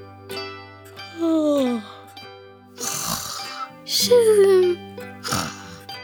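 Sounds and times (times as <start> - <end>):
speech: 1.2 - 1.9, 4.0 - 4.4
voice imitating snoring: 2.8 - 6.0.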